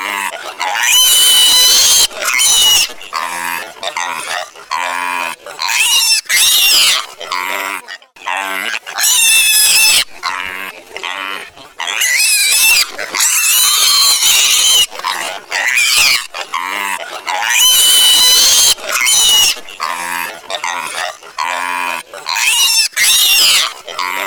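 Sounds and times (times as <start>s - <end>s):
young piglet screaming in high squeals: 0.0s - 24.2s.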